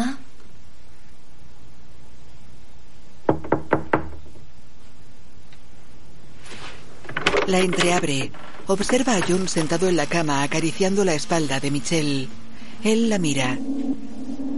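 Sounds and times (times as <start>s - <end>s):
hiss: 0.0s - 14.5s
knocking on a door in a thriller film scene: 3.3s - 4.4s
speech: 7.5s - 14.1s.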